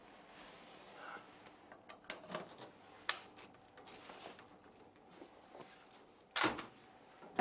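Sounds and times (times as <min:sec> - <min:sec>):
faint handling noise: 0:00.0 - 0:07.3
keys jangling as they are handed over: 0:02.3 - 0:05.0.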